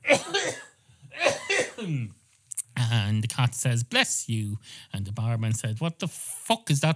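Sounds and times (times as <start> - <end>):
person voicing a cough: 0.0 - 2.1
speech: 1.9 - 2.2, 2.8 - 6.9.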